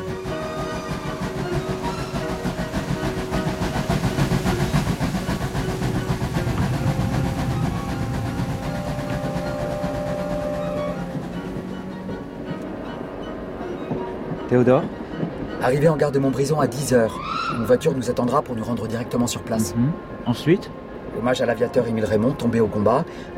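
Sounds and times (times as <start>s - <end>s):
thin squealing tones of a steam train: 0.0s - 18.1s
steam train engine pulling out of a Paris station in the evening: 0.0s - 21.2s
speech: 14.5s - 15.0s, 15.6s - 23.3s.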